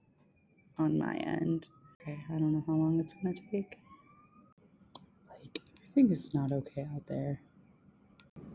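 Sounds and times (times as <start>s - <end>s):
emergency vehicle siren wailing outside: 0.0s - 4.6s
speech: 0.8s - 3.8s, 5.4s - 7.5s.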